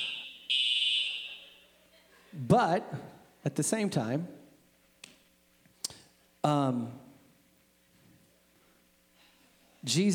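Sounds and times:
fire alarm blaring from a false alarm: 0:00.0 - 0:01.8
speech: 0:02.4 - 0:04.4, 0:06.4 - 0:07.0, 0:09.8 - 0:10.1.

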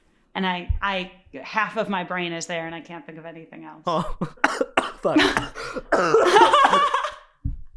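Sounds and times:
speech: 0:00.4 - 0:07.0
person coughing into the microphone: 0:04.2 - 0:06.8
laughter: 0:05.0 - 0:07.3.

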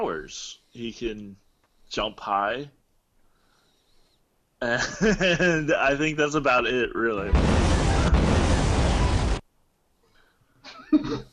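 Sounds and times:
speech: 0:00.0 - 0:02.8, 0:04.6 - 0:08.2, 0:10.9 - 0:11.3
laughter: 0:04.6 - 0:05.8
loud explosion from a film: 0:07.2 - 0:09.4.

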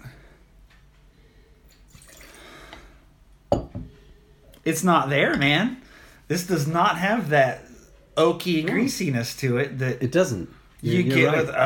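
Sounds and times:
glass clinking: 0:01.7 - 0:02.4, 0:03.5 - 0:03.9
wine pouring into a glass: 0:01.7 - 0:02.6
speech: 0:04.6 - 0:11.6.

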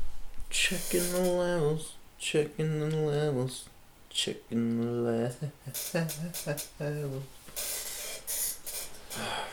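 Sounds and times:
speech: 0:00.6 - 0:07.8, 0:09.2 - 0:09.4
chair creaking squeak: 0:00.7 - 0:01.5, 0:05.7 - 0:06.8, 0:07.5 - 0:09.2
chair seat hissing and rustling as it shifts and settles: 0:00.7 - 0:01.7, 0:07.4 - 0:09.3.

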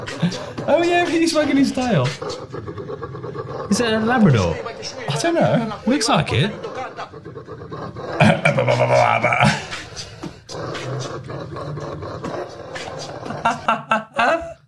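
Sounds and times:
laughter: 0:00.0 - 0:02.4, 0:03.7 - 0:07.2, 0:08.1 - 0:10.0, 0:13.0 - 0:14.6
dog growling and snarling: 0:00.0 - 0:13.7
speech: 0:00.1 - 0:10.1.

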